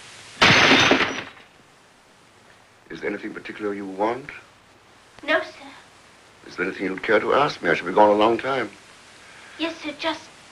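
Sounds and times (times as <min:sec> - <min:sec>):
drinking glass thrown at a fireplace shattering: 0:00.4 - 0:01.6
speech: 0:02.9 - 0:04.5, 0:05.2 - 0:05.6, 0:06.5 - 0:08.8, 0:09.6 - 0:10.3.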